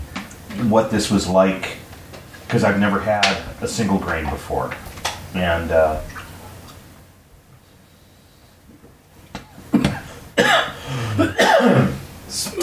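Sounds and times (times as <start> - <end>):
speech: 0.6 - 1.8, 2.5 - 6.1
man coughing and spluttering after choking on water: 9.5 - 12.6
wheezy throat-clearing: 9.7 - 12.6.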